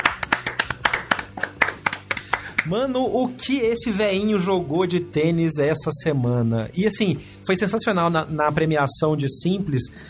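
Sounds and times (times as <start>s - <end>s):
applause at a tennis tournament prize ceremony: 0.0s - 2.8s
speech: 2.6s - 10.0s.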